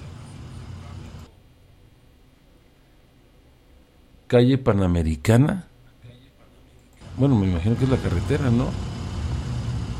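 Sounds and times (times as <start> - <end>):
low rumble of congested road traffic: 0.0 - 1.3, 7.0 - 9.9
speech: 4.3 - 5.7, 7.2 - 9.0.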